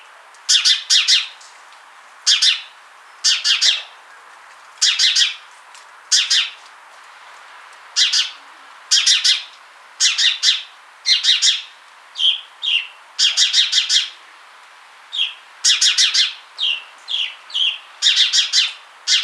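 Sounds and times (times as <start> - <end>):
house sparrow Passer domesticus chirping: 2.3 - 3.9, 4.8 - 5.4, 6.1 - 6.6, 8.0 - 14.2, 15.1 - 19.2.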